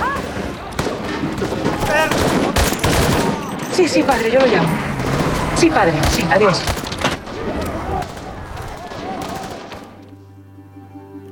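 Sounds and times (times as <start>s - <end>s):
dense noisy commotion: 0.0s - 10.1s
sharp gunshots in a film scene: 0.0s - 10.1s
speech: 3.8s - 4.9s, 5.6s - 6.8s
steady low hum: 4.1s - 9.2s.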